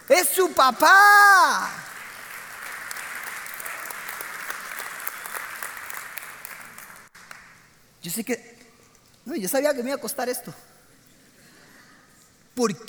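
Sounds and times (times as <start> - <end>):
speech: 0.4 - 1.7, 8.0 - 8.5, 9.3 - 10.7, 12.6 - 12.8
audience applauding: 1.6 - 7.6.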